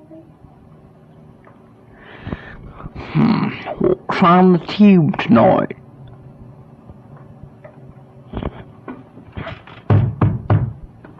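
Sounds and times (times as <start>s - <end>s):
speech: 3.2s - 5.8s
knocking on a door: 9.8s - 10.9s.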